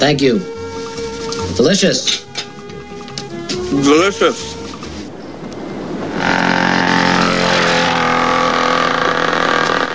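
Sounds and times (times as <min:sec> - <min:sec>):
speech: 0:00.0 - 0:00.6, 0:01.5 - 0:02.3, 0:03.7 - 0:04.6
dirt bike engine speeding past people outside a hotel: 0:06.1 - 0:09.9.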